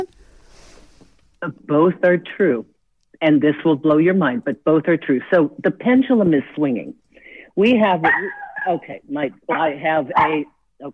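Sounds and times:
speech: 0:00.0 - 0:00.2, 0:01.4 - 0:07.0, 0:07.6 - 0:10.9
small female dog barking and yapping at a man outside the house: 0:08.0 - 0:08.8, 0:09.5 - 0:10.5.

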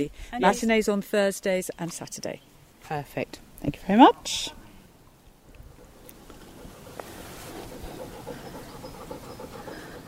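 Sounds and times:
speech: 0:00.0 - 0:04.6
heavy panting: 0:06.5 - 0:10.0.

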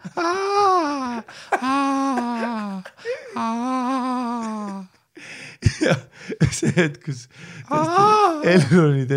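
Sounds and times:
voice imitating a whimpering baby in a train carriage: 0:00.1 - 0:05.0, 0:07.7 - 0:08.6
laughter: 0:01.3 - 0:03.4, 0:05.6 - 0:08.9
speech: 0:05.9 - 0:09.1.

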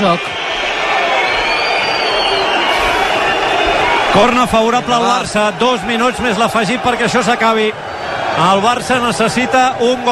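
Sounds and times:
speech: 0:00.0 - 0:00.4, 0:04.2 - 0:10.1
huge stadium crowd whistling in disapproval: 0:00.0 - 0:10.1.

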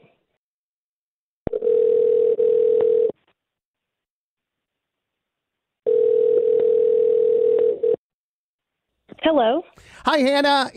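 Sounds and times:
outgoing phone call ringback tone: 0:01.5 - 0:03.2, 0:05.8 - 0:08.0
speech: 0:09.3 - 0:10.7.

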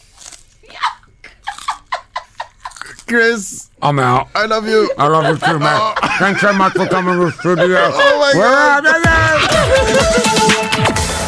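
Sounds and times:
crunchy food being bitten and chewed: 0:00.0 - 0:00.7, 0:01.4 - 0:03.1
laughter: 0:00.7 - 0:03.0, 0:04.6 - 0:10.6
speech: 0:03.1 - 0:09.1.

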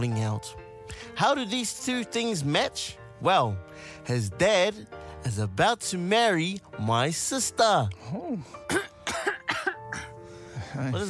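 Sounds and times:
speech: 0:00.0 - 0:08.9, 0:10.8 - 0:11.0
harsh coughs: 0:08.6 - 0:10.2.

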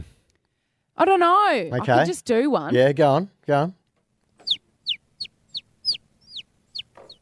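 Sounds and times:
speech: 0:01.0 - 0:03.8
person imitating a baby bird calling: 0:01.7 - 0:02.1.

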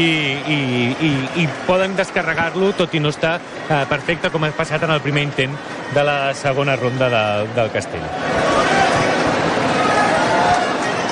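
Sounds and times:
large outdoor crowd applauding in a town square: 0:00.0 - 0:05.5, 0:08.2 - 0:11.0
speech: 0:00.0 - 0:08.9.

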